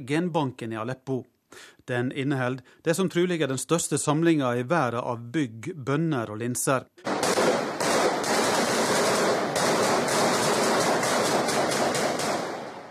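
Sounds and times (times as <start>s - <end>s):
speech: 0.0s - 7.1s
gunfire in a war-torn city: 7.0s - 12.9s.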